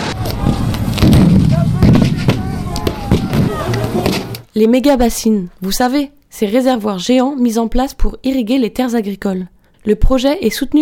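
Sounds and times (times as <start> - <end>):
dispersal shots fired by police: 0.0 - 4.4
crowd of protesters in commotion: 0.0 - 4.5
speech: 4.6 - 10.8.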